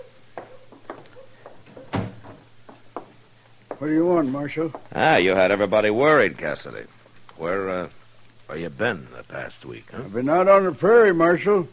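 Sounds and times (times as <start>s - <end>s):
soft footsteps: 0.0s - 5.1s
door being shut: 1.7s - 2.5s
speech: 3.8s - 11.7s.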